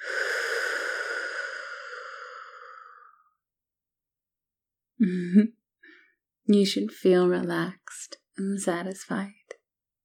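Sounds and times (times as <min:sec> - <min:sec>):
slow deep breathing in and out: 0:00.0 - 0:03.4
speech: 0:05.0 - 0:05.6, 0:06.5 - 0:09.4.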